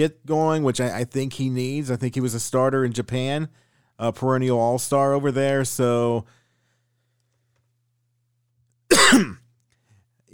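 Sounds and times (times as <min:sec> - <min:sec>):
speech: 0:00.0 - 0:06.4, 0:09.1 - 0:09.4
person coughing: 0:08.9 - 0:09.5.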